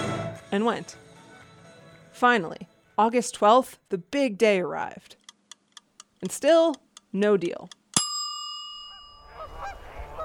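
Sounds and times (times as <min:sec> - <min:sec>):
speech: 0:00.5 - 0:01.1, 0:02.2 - 0:05.2, 0:06.2 - 0:07.8
sustained ringing tone: 0:08.0 - 0:09.8
flock of geese flying south honking: 0:09.2 - 0:10.2.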